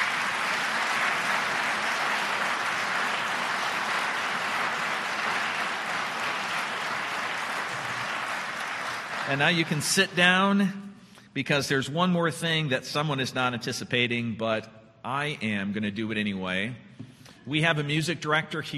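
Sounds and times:
audience applauding: 0.0 - 10.2
speech: 9.3 - 10.8, 11.4 - 16.9, 17.5 - 18.7.

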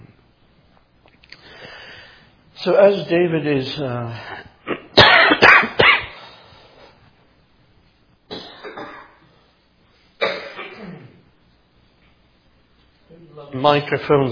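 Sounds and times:
speech: 2.6 - 4.4, 13.6 - 14.3
person coughing into a church microphone: 4.6 - 6.4, 8.3 - 9.3, 10.2 - 11.3.

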